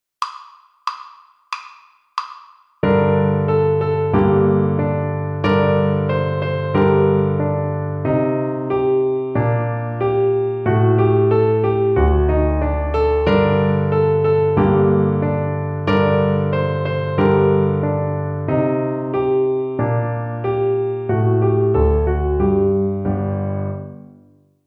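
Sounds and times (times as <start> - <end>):
piano accompaniment: 2.8 - 24.4.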